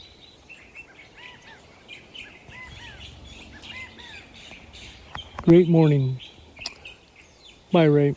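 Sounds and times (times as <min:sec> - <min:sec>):
acorn woodpeckers calling: 0:00.0 - 0:08.1
quail calling: 0:00.8 - 0:07.6
scrub jays calling and squawking: 0:00.9 - 0:08.1
faint rumble: 0:01.9 - 0:07.5
California thrashers singing: 0:02.0 - 0:07.1
speech: 0:05.5 - 0:06.2, 0:07.7 - 0:08.1.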